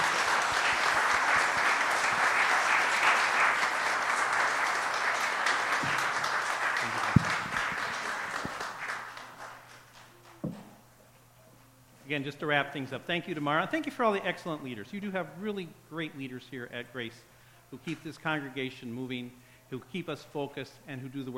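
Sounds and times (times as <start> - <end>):
crowd applauding: 0.0 - 10.4
knocks: 10.4 - 10.8
speech: 12.2 - 21.3.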